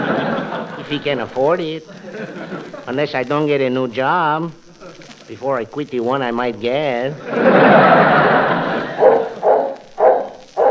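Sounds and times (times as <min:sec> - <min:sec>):
laughter: 0:00.0 - 0:03.1, 0:04.6 - 0:05.3, 0:07.0 - 0:09.4
speech: 0:00.9 - 0:04.6, 0:05.3 - 0:08.9
dog barking: 0:09.0 - 0:10.6.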